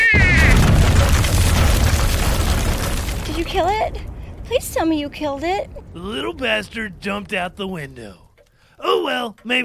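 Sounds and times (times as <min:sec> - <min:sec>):
two-shot rocket launcher firing and exploding in a room: 0:00.2 - 0:03.7
speech: 0:04.8 - 0:08.2, 0:08.8 - 0:09.6.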